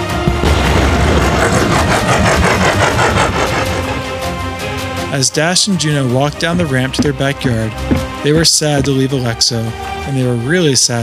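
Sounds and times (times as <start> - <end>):
space saucer quantum drive roaring as it throttles up: 0.2 - 5.1
speech: 5.2 - 11.0.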